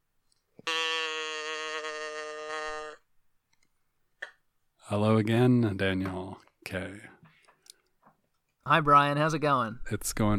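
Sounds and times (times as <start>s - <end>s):
person imitating a cow mooing: 0.6s - 3.1s
speech: 4.9s - 7.2s, 8.7s - 10.3s.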